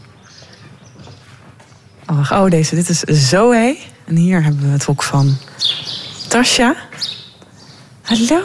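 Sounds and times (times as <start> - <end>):
horse hooves clip-clopping in a stable: 0.0 - 3.6
low steady horse stable ambience: 2.0 - 8.4
speech: 2.1 - 6.9, 8.1 - 8.4.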